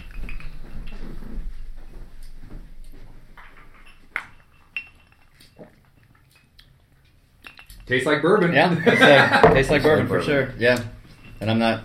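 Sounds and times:
glasses clinking while fetching a dump glass during a bourbon tasting: 3.9s - 5.6s, 9.2s - 10.2s
speech: 7.9s - 11.8s
laughter: 8.7s - 10.1s.

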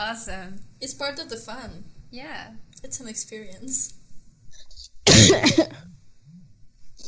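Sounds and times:
speech: 0.0s - 6.0s
faint hiss: 0.0s - 7.0s
soft low throat sounds: 4.5s - 7.0s
person coughing harshly with raspy throat-clearing: 5.1s - 5.9s.

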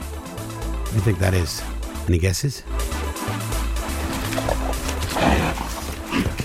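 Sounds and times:
speech: 0.9s - 3.4s
brown bear growling: 3.6s - 6.4s.

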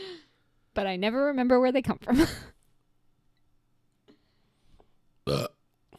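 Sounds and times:
speech: 0.8s - 2.6s
loud deliberately worked-up burp: 5.2s - 5.6s.

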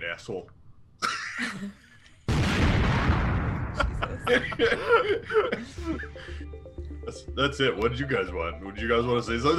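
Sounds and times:
speech: 0.1s - 1.8s, 4.2s - 9.5s
loud explosion: 2.3s - 4.3s
laughter: 3.8s - 7.2s, 9.4s - 9.5s.

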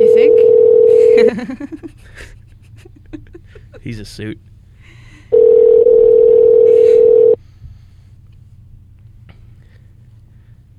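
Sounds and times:
ringback tone from an outgoing phone call: 0.0s - 1.3s, 5.3s - 7.4s
laughter: 1.0s - 4.0s
speech: 3.9s - 4.5s.

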